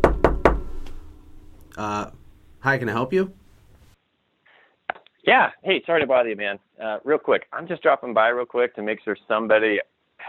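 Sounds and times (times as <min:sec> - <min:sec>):
knocking on a wooden door: 0:00.0 - 0:00.8
speech: 0:01.8 - 0:03.4, 0:05.3 - 0:10.2.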